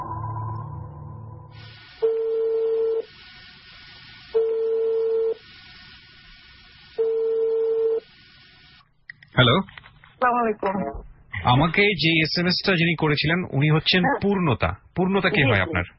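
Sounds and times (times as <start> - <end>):
phone line ringing while a call is placed: 2.0 - 3.1, 4.4 - 5.4, 7.0 - 8.0
speech: 9.4 - 15.9.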